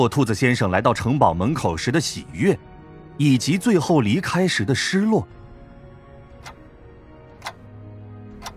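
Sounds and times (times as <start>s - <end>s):
speech: 0.0s - 5.4s
blue clock ticking: 6.4s - 7.8s, 8.4s - 8.5s.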